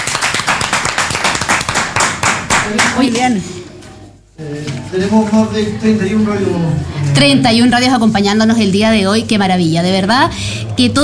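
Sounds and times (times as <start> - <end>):
applause from many hands at a celebration: 0.0 - 3.0
speech: 2.7 - 3.6, 4.4 - 11.0.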